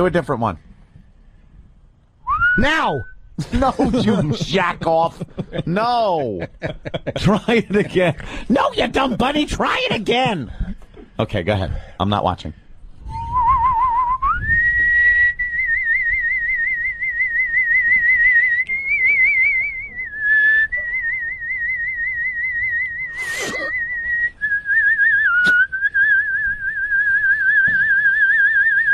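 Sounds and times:
speech: 0.0s - 0.7s, 2.6s - 12.6s
person whistling a tune: 2.2s - 3.2s, 13.1s - 28.9s
laughter: 3.4s - 10.3s.

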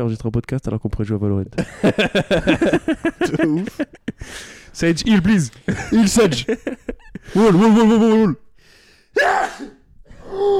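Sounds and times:
speech: 0.0s - 8.4s, 9.2s - 9.8s
laughter: 1.6s - 4.5s, 5.5s - 8.2s
loud sneeze: 9.2s - 9.9s.

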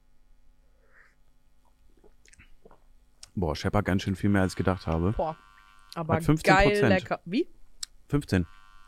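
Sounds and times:
low steady hum: 0.0s - 8.8s
person sipping a drink with wet slurps: 1.9s - 2.8s
lip smacks: 1.9s - 3.3s
speech: 3.4s - 8.6s.

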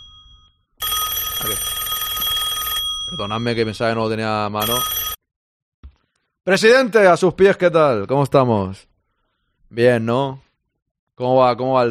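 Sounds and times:
telephone bell ringing: 0.0s - 3.9s, 4.6s - 5.2s
speech: 1.4s - 1.8s, 3.1s - 5.0s, 6.4s - 8.9s, 9.7s - 10.4s, 11.2s - 11.8s.

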